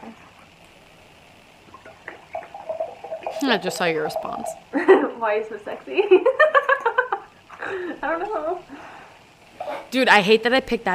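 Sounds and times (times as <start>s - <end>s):
wine pouring into a glass: 1.6s - 4.7s
speech: 3.4s - 6.5s, 7.7s - 8.8s, 9.9s - 10.9s.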